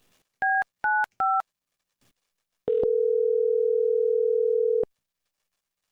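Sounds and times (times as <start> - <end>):
telephone dial tone: 2.7 - 4.9.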